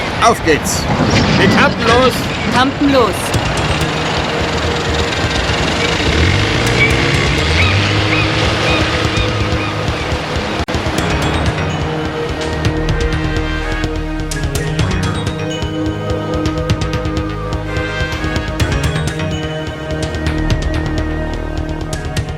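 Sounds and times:
speech: 0:00.2 - 0:03.7
motorboat engine roaring as the boat races out to sea: 0:03.2 - 0:22.3.

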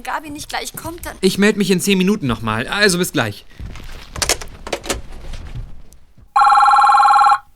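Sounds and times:
speech: 0:00.0 - 0:03.8
telephone ringing: 0:06.4 - 0:07.5.

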